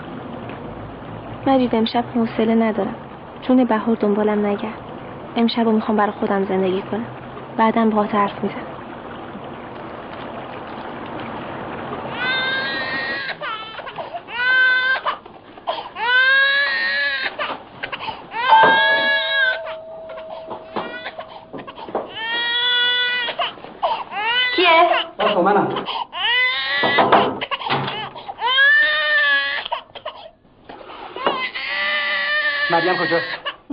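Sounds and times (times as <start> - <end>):
speech: 1.4 - 8.7
infant wailing and sobbing: 12.1 - 30.3, 31.2 - 33.6.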